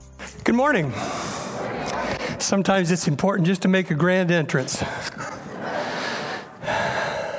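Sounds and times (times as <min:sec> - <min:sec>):
person panting after running into a church: 0:00.3 - 0:02.4, 0:04.8 - 0:07.3
speech: 0:00.5 - 0:01.2, 0:02.4 - 0:05.3.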